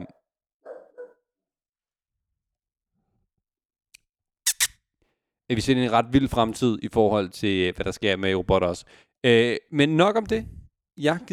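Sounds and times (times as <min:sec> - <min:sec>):
dog barking: 0:00.6 - 0:01.3
speech: 0:05.5 - 0:11.3.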